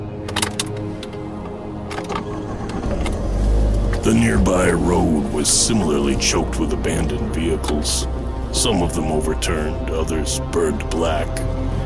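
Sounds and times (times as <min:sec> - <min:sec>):
large SUV engine idling after starting: 0:00.0 - 0:11.8
mechanical clicks and rattles: 0:00.2 - 0:04.0
speech: 0:04.0 - 0:11.7.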